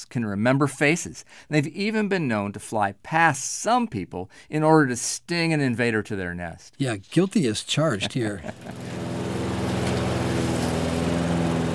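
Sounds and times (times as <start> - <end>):
speech: 0.0 - 9.2
laughter: 6.8 - 9.1
lawn mower with small gas engine mowing a yard: 7.9 - 11.7.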